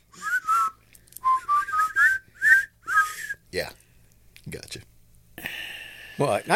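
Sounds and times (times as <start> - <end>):
several people whistling a march tune: 0.1 - 3.4
speech: 3.5 - 3.8, 6.2 - 6.5.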